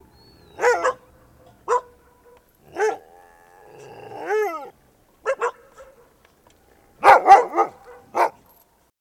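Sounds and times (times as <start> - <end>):
dog barking outdoors: 0.6 - 3.0, 5.3 - 6.1, 7.0 - 8.4
dog howling outdoors: 2.7 - 4.7.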